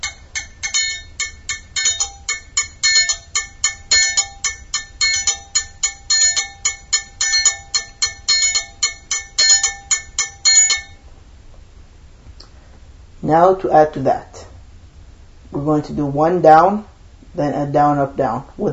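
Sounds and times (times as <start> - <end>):
triangle played in a simple beat: 0.0 - 11.0
speech: 13.3 - 14.3, 15.5 - 18.7.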